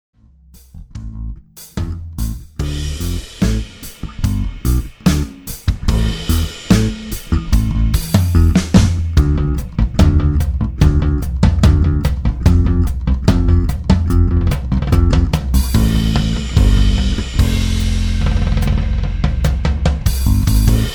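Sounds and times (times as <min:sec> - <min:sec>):
guitar: 0:02.6 - 0:20.9.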